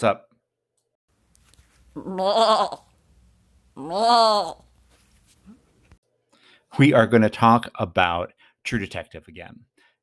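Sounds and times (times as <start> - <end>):
speech: 0.0 - 0.3, 2.0 - 2.9, 3.8 - 4.6, 6.8 - 9.7
goat bleating: 2.0 - 2.9.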